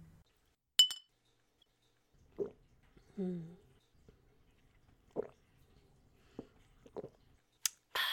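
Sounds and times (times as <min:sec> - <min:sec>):
glasses of drinks clinking in a toast: 0:00.8 - 0:01.1
drips: 0:01.9 - 0:07.8
soft wet sips: 0:02.2 - 0:08.0.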